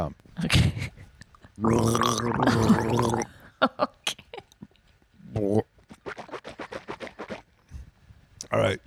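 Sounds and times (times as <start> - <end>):
speech: 0.0 - 1.0, 1.6 - 4.2
person swishing a drink of water around in the mouth: 5.8 - 7.9.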